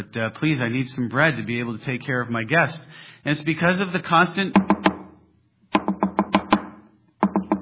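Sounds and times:
speech: 0.0 - 4.7
sharp knocks on a door: 4.6 - 5.1, 5.8 - 7.5.

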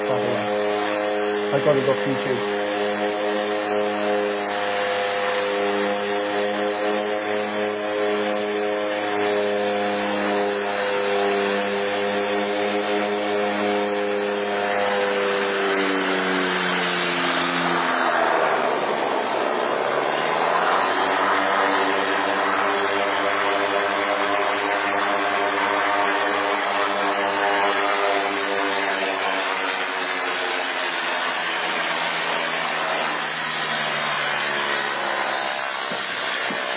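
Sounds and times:
small propeller plane taxiing and turning on a mission airstrip in West Sepik province: 0.0 - 36.7
speech: 1.5 - 2.6.

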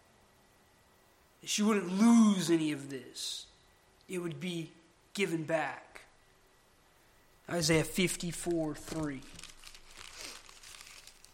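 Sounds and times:
speech: 1.4 - 3.5, 4.1 - 6.0, 7.5 - 9.5
thin Bible pages rustling as turned: 8.8 - 11.3.

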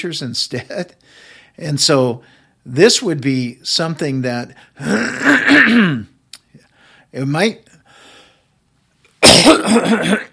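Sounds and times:
speech: 0.0 - 6.1, 7.1 - 7.7, 9.4 - 10.2
man clearing his throat: 4.8 - 6.1, 9.2 - 10.3.

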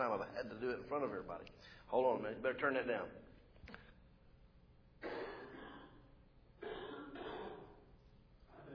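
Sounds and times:
speech: 0.0 - 3.8
person coughing in rough raspy bouts: 5.0 - 7.8
person clearing throat: 5.0 - 7.9.

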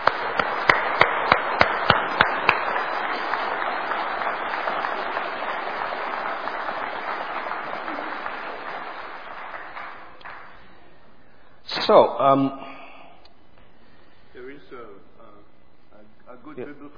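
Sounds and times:
audience applause: 0.0 - 10.7
speech: 11.9 - 12.7.

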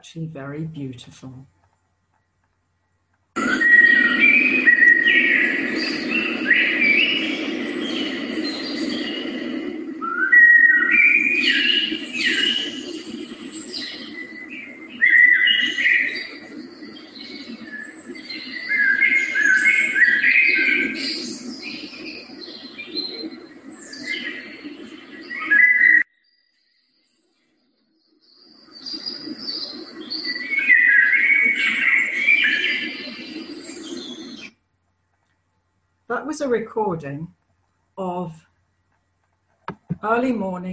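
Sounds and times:
speech: 0.0 - 1.6, 36.4 - 37.4, 40.0 - 40.7
birds singing and chirping in early spring morning woodland: 3.4 - 27.0, 28.3 - 34.5.

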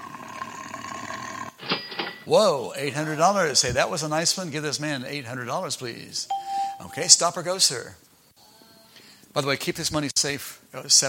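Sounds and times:
tiger roar sound effect: 0.0 - 1.6
speech: 2.3 - 8.1, 9.3 - 11.0.

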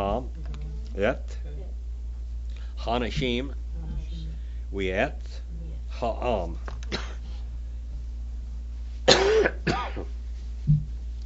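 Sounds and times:
steady low hum: 0.0 - 11.2
speech: 1.0 - 1.5, 2.8 - 4.0, 4.7 - 5.4, 6.0 - 7.0, 9.4 - 10.1
person with a cold coughing harshly: 6.9 - 7.3, 9.1 - 10.1.

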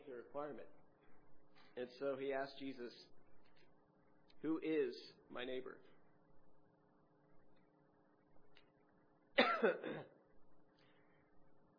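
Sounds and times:
low steady hum: 0.0 - 11.7
speech: 0.3 - 0.8, 1.8 - 3.2, 4.4 - 5.9, 9.6 - 10.2
throat clearing: 9.4 - 10.2
rough cough: 9.4 - 10.3.

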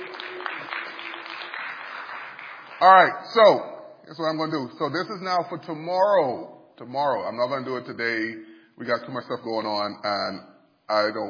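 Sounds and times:
audience applause: 0.0 - 3.1
speech: 2.8 - 11.2.

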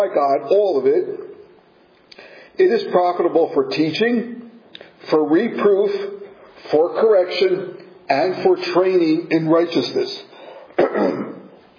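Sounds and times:
speech: 0.0 - 1.2, 2.6 - 4.4, 5.0 - 11.2
throat-clearing cough from a tickle in the throat: 10.8 - 11.6.

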